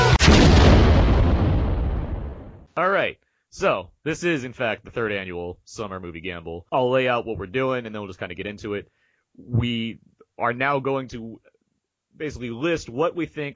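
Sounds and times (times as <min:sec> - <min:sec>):
big rumbling explosion: 0:00.2 - 0:02.7
rapid barrage of booming blasts with a metallic tonal edge: 0:00.2 - 0:02.7
speech: 0:04.1 - 0:11.5, 0:12.1 - 0:13.5.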